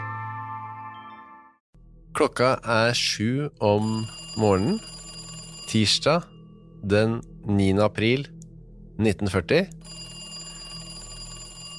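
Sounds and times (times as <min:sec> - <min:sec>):
speech: 0:02.2 - 0:04.9, 0:05.7 - 0:08.3, 0:09.0 - 0:10.0
telephone bell ringing: 0:03.8 - 0:06.4, 0:09.8 - 0:11.7.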